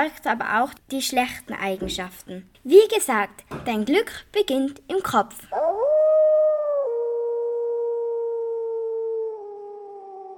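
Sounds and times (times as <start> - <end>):
speech: 0.0 - 5.8
wolves howling: 5.5 - 10.3.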